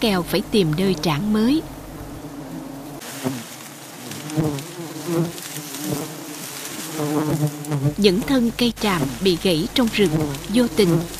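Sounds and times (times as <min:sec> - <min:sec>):
speech: 0:00.0 - 0:01.8, 0:04.4 - 0:06.1, 0:07.0 - 0:11.1
honey bees buzzing around a hive in a melaleuca forest: 0:00.0 - 0:11.1.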